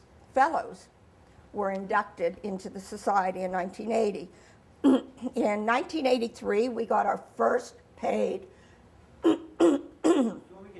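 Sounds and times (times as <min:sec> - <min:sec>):
speech: 0:00.4 - 0:08.5
person clearing throat: 0:04.8 - 0:05.3, 0:09.2 - 0:10.5.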